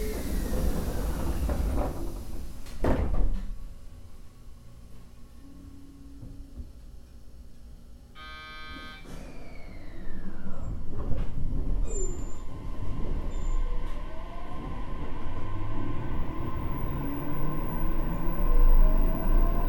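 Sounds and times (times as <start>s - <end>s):
JR Kyushu 817 series electric train running rumble heard inside: 0.0s - 5.1s, 10.1s - 19.6s
thump inside electric train: 2.7s - 3.5s.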